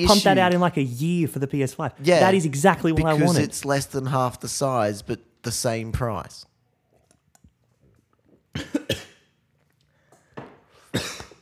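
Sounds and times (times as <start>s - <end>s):
speech: 0.0s - 6.5s
person coughing harshly: 8.6s - 9.3s, 10.9s - 11.3s.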